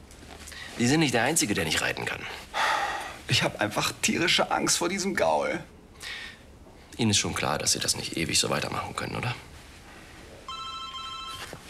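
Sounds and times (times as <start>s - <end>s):
speech: 0.8s - 2.5s, 3.3s - 6.2s, 7.0s - 9.6s
telephone ringing with an electronic ring: 10.5s - 11.6s.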